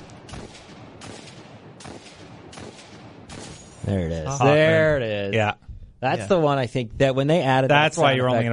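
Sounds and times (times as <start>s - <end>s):
video game hand cannon gunshots: 0.0s - 3.8s
speech: 3.9s - 8.5s.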